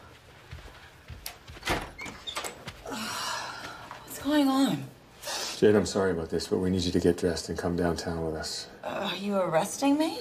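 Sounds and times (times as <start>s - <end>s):
hotel room door opening: 1.2s - 2.8s
speech: 4.2s - 4.9s, 5.6s - 10.1s.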